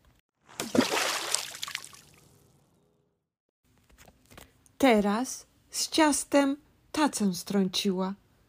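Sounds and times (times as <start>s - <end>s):
water splashing: 0.5s - 2.4s
water trickling: 0.7s - 2.5s
speech: 4.8s - 8.2s.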